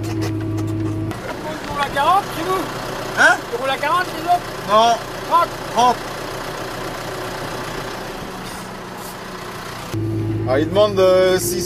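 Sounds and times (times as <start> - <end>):
tractor diesel engine idling: 0.9 - 11.6
speech: 2.0 - 6.1, 10.5 - 11.6.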